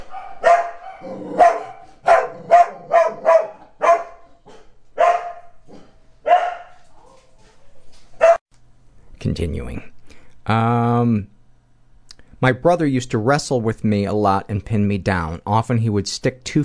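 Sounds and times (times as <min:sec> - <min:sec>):
dogs barking excitedly: 0:00.0 - 0:07.4, 0:08.2 - 0:08.4
speech: 0:09.2 - 0:11.3, 0:12.4 - 0:16.6.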